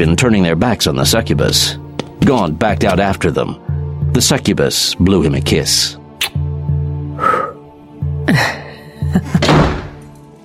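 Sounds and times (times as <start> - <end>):
speech: 0.0 - 6.4, 8.3 - 9.6
door thudding shut with heavy knocks: 9.4 - 10.1.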